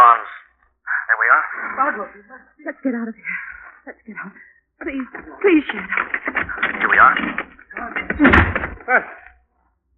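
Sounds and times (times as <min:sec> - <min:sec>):
speech: 0:01.9 - 0:09.2
jammed door rattling while being forced: 0:04.8 - 0:08.9
loud thud: 0:06.2 - 0:08.8.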